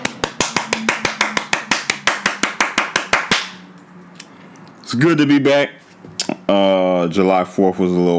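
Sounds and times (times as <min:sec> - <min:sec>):
hand claps: 0:00.0 - 0:03.7
speech: 0:04.9 - 0:05.8, 0:06.5 - 0:08.1.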